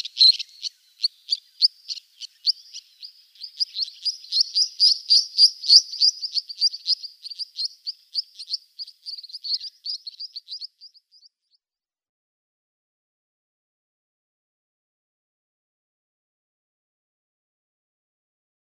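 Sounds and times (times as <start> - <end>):
pair of Three-banded Plovers giving display calls: 0.0 - 11.0.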